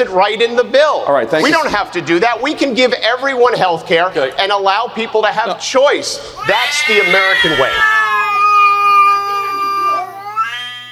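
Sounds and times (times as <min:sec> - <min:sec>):
speech: 0:00.0 - 0:08.1
several cats yowling in harsh caterwauling chorus: 0:06.3 - 0:10.9.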